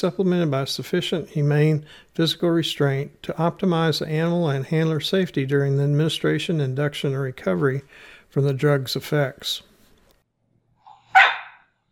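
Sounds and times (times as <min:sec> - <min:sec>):
speech: 0:00.0 - 0:09.7
dog barking: 0:10.9 - 0:11.7.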